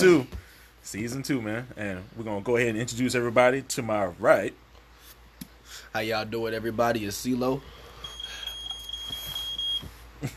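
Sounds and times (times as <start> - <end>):
speech: 0.0 - 4.6, 5.7 - 7.8
low room noise: 0.0 - 10.3
smoke detector sustained high-pitched tone: 7.8 - 10.1.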